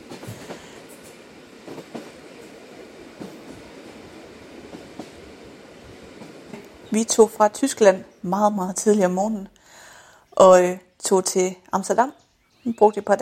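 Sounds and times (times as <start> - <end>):
train rumbling on rails: 0.0 - 8.9
speech: 6.9 - 9.6, 10.4 - 13.1.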